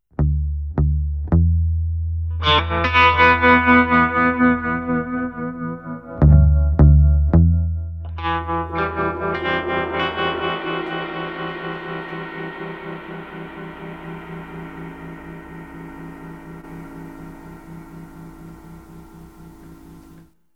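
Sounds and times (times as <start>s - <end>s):
muted bass guitar: 0.1s - 15.1s
atmospheric drums: 8.3s - 20.2s.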